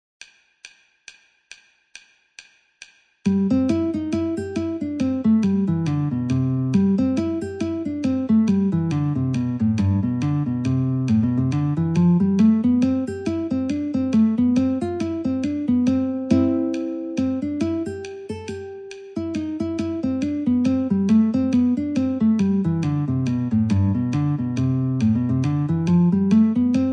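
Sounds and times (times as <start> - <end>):
guitar metronome ticking: 0.2 - 26.9.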